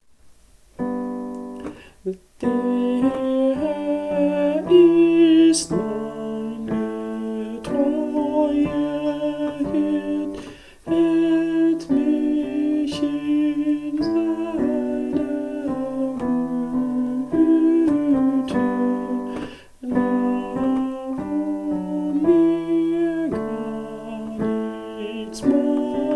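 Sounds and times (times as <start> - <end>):
tenor singing in a parish congregation: 2.0 - 26.1.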